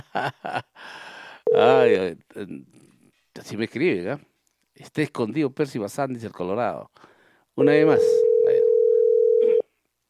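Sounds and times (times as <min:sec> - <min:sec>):
speech: 0:00.2 - 0:08.3
ringback tone of an unanswered outgoing telephone call: 0:01.5 - 0:01.9, 0:07.6 - 0:09.6.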